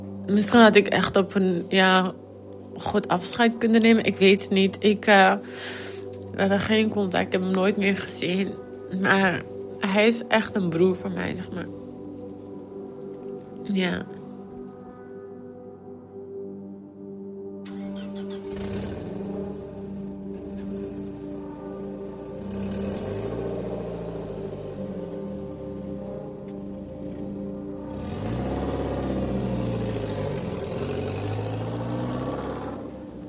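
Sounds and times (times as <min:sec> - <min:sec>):
speech: 0:00.3 - 0:02.2, 0:02.8 - 0:05.8, 0:06.4 - 0:11.8, 0:13.7 - 0:14.2
car engine running and revving: 0:17.7 - 0:33.2.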